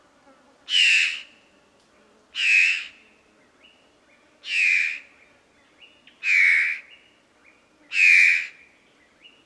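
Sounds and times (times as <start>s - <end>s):
fawn-breasted bowerbird calls: 0.7s - 1.3s, 2.4s - 3.0s, 4.4s - 5.1s, 6.2s - 7.0s, 7.9s - 8.6s.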